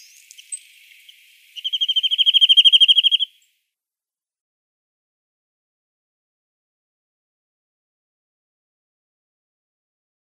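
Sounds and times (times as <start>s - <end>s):
Corsican nuthatch calling: 0.0s - 3.5s.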